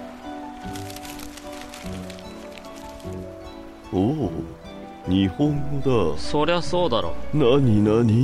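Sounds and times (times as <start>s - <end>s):
steady low musical hum: 0.0s - 8.2s
paper of a letter crinkling and rustling as it is opened and unfolded: 0.6s - 3.3s
speech: 3.9s - 8.2s.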